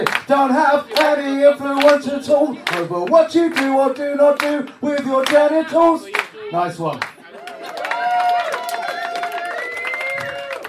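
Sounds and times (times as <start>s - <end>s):
live audience clapping along to a song: 0.0s - 10.6s
speech: 0.3s - 7.1s
live audience cheering with whoops: 7.3s - 10.6s.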